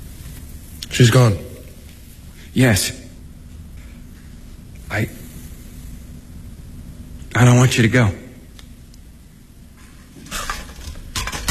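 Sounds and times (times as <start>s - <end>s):
speech: 0.9s - 1.4s, 2.6s - 3.0s, 5.0s - 5.2s, 7.4s - 8.2s
cooking pots being handled and set down: 10.2s - 11.4s.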